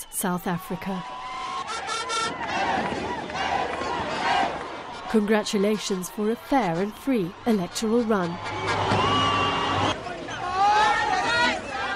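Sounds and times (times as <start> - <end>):
crowd cheering celebrating election results: 0.0 - 11.9
speech: 0.2 - 1.2, 5.1 - 9.0
shouted voices: 0.4 - 11.9
high whoops: 8.5 - 11.6.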